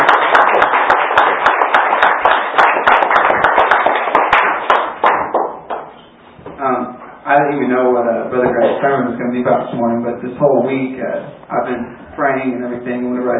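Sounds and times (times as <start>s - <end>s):
audience clapping hands: 0.0s - 6.0s
speech: 7.5s - 13.3s.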